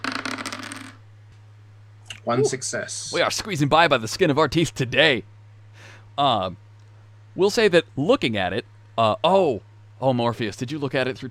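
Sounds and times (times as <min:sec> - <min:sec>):
dice clattering across a hard surface: 0:00.0 - 0:01.0
low steady hum: 0:00.0 - 0:11.2
speech: 0:02.2 - 0:05.3, 0:06.2 - 0:06.6, 0:07.4 - 0:11.2.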